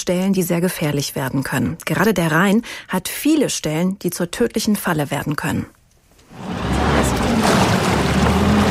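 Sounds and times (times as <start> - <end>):
speech: 0.0 - 5.8
rescue motorboat engine roaring over a river: 6.4 - 8.6.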